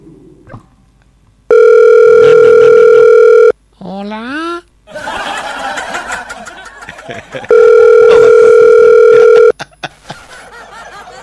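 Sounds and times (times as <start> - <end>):
telephone ringing tone during an unanswered call: 1.5 - 3.6, 7.5 - 9.5
laughter: 4.9 - 8.4, 9.1 - 11.2.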